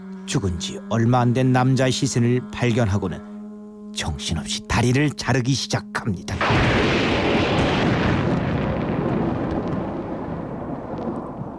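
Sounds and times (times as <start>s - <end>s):
speech: 0.3s - 3.3s, 4.0s - 7.0s
deep continuous thunder rumbling: 6.4s - 11.5s.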